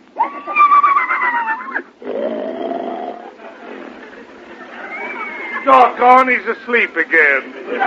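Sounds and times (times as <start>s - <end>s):
laughter: 0.2s - 1.9s, 3.0s - 6.1s, 7.0s - 7.8s
horse with a beginner rider whinnying loudly: 0.2s - 3.2s
speech: 6.1s - 7.8s.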